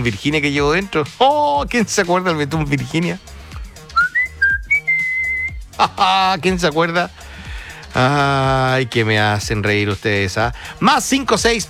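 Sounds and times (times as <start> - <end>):
speech: 0.0 - 3.3, 5.8 - 7.2, 8.0 - 11.6
person whistling a short tune: 3.9 - 5.6.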